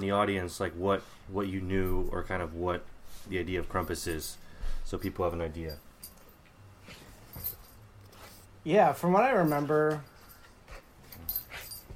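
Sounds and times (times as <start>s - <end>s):
speech: 0.0s - 5.9s, 8.6s - 10.1s
dog whimpering and snuffling: 10.4s - 11.9s.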